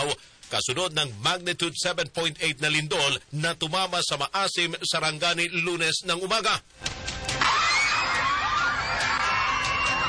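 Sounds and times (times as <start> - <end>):
speech: 0.0 - 7.6
schoolchildren at an elementary school screaming and shouting during an earthquake: 7.4 - 10.0.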